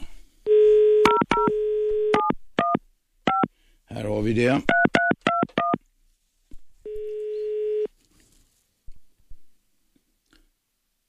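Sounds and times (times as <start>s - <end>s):
faint telephone dial tone: 0.5s - 2.3s, 6.9s - 7.9s
DTMF tones of a telephone number being dialed: 0.5s - 3.5s, 6.8s - 7.9s
speech: 4.0s - 4.8s.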